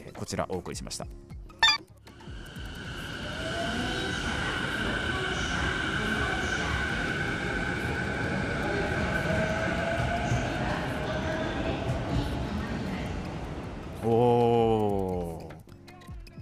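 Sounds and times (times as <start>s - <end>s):
speech: 0.3s - 1.4s
commuter train rolling with a steady rumble: 2.1s - 14.8s
commuter train sustained high motor whine: 2.2s - 10.8s.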